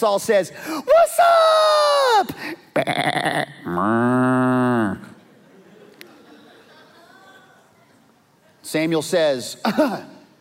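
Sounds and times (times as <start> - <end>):
speech: 0.0 - 5.0, 8.7 - 10.1
sheep or goat bleating: 2.8 - 5.0
cattle mooing: 2.9 - 5.1
laughter: 5.0 - 7.9.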